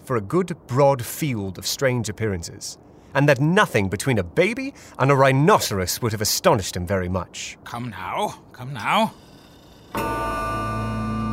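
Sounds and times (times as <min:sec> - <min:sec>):
speech: 0:00.1 - 0:09.2, 0:09.9 - 0:10.3
clock striking one o'clock: 0:08.8 - 0:11.3.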